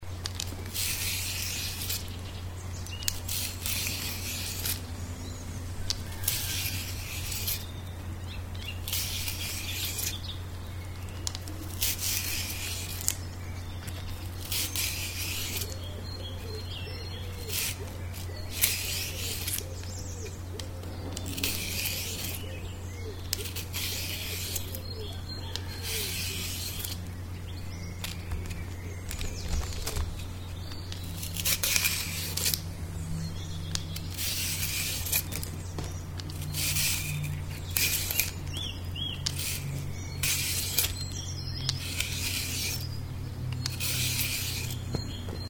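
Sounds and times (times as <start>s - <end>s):
asparagus peeling: 0.1s - 45.4s.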